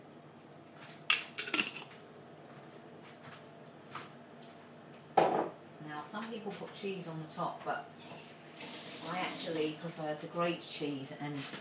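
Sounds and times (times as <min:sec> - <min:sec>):
metal utensil clinking against cooking pot: 0:01.1 - 0:01.9
speech: 0:06.3 - 0:08.2, 0:09.1 - 0:11.5.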